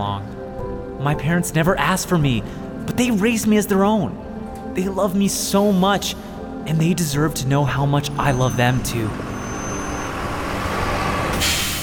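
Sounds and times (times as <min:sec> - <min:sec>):
speech: 0:00.0 - 0:09.3
bus engine rumbling at a station: 0:07.8 - 0:11.8
bus air brakes hissing at a station: 0:09.2 - 0:11.8.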